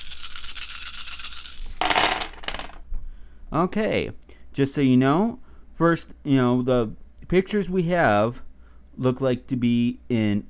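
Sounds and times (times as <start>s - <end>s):
picture dice rolled and clattering: 0.0s - 2.8s
speech: 3.5s - 10.4s.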